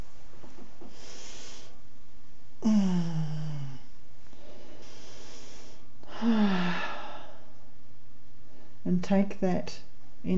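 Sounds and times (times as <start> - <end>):
big deep breath drawn in: 0.9 - 1.8, 2.6 - 7.6
speech: 2.6 - 3.1, 9.1 - 10.3
long voiced yawn sliding downward in pitch: 2.6 - 3.9, 6.1 - 7.3.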